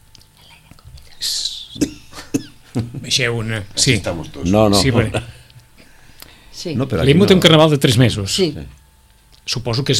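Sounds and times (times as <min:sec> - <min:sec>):
person coughing: 0:01.8 - 0:02.6
speech: 0:03.1 - 0:05.3, 0:06.6 - 0:08.8, 0:09.5 - 0:09.9.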